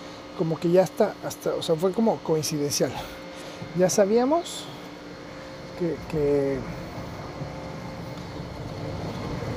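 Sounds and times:
speech: 0.4 - 4.8, 5.8 - 6.8
road noise in car cabin: 5.4 - 9.5.

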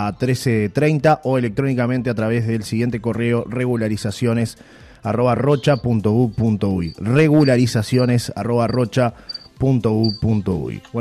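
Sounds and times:
speech: 0.0 - 10.9
cricket chirping in short high-pitched bursts: 5.6 - 10.2.

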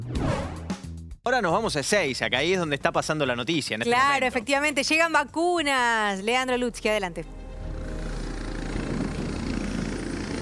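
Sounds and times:
speech: 1.3 - 7.4
helicopter rotor thrumming with engine whine while landing: 7.6 - 10.4.

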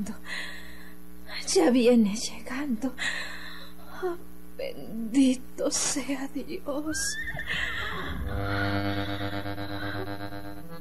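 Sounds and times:
speech: 0.0 - 0.6, 1.5 - 3.4, 4.0 - 9.2
horse whinnying: 7.1 - 8.8.

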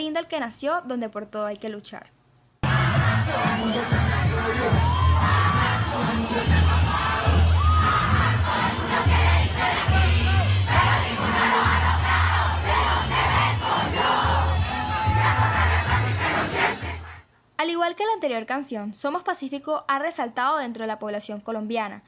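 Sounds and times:
speech: 0.0 - 2.2, 2.9 - 7.2, 17.6 - 22.0
large crowd of protesters chanting and shouting in the streets of Colombia: 2.6 - 17.3.

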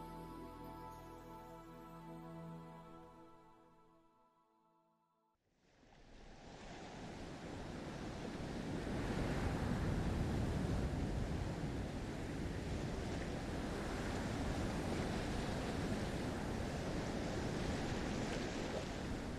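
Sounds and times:
roar of sea waves and surf: 5.6 - 19.3
wind rushing across the microphone: 6.4 - 19.3.

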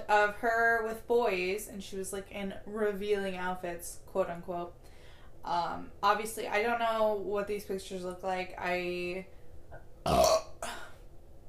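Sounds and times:
speech: 0.1 - 10.4
person burping: 9.7 - 11.0.

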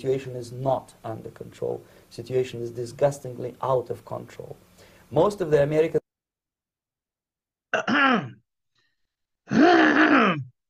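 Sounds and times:
speech: 0.0 - 6.0
throat clearing: 7.8 - 8.4, 9.5 - 10.5.

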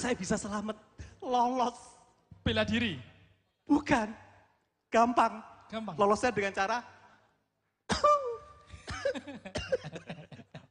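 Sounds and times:
speech: 0.0 - 3.1, 3.7 - 4.2, 4.9 - 7.0, 9.2 - 10.4
person deliberately coughing with a thick phlegmy rasp: 7.9 - 10.6.

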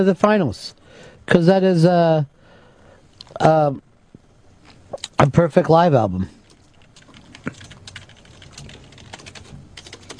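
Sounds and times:
speech: 0.0 - 2.4, 3.3 - 3.8, 5.0 - 6.4
typing on a computer keyboard: 6.5 - 10.1.

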